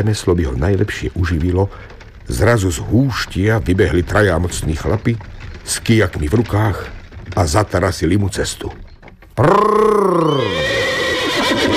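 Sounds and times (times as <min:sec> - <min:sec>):
speech: 0:00.0 - 0:08.8, 0:09.4 - 0:10.5
horse neighing: 0:09.4 - 0:11.7.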